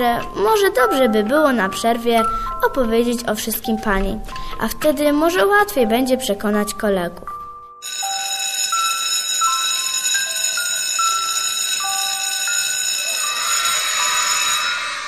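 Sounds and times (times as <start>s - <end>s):
speech: 0.0s - 7.3s
school bell electronic chime playing a melody: 7.8s - 15.0s.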